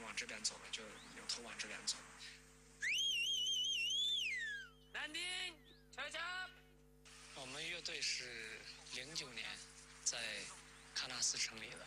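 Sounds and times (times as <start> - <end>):
faint low hum: 0.0 - 11.8
speech: 0.1 - 2.5, 5.0 - 6.6, 7.4 - 11.8
sustained shepherd's whistle for herding sheep: 2.8 - 4.9.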